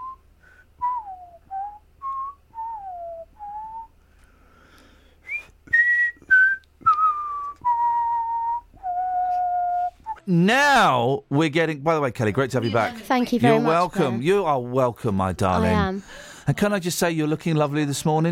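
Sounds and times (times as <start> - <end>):
person whistling a halting uneven tune: 0.0 - 0.2, 0.8 - 3.9, 5.2 - 10.3
speech: 10.3 - 18.2.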